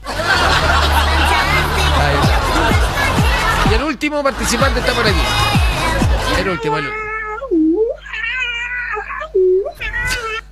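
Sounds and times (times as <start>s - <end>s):
laughter: 0.0s - 7.0s
speech: 4.0s - 5.6s, 6.4s - 7.1s
cat meowing loudly: 6.3s - 10.5s.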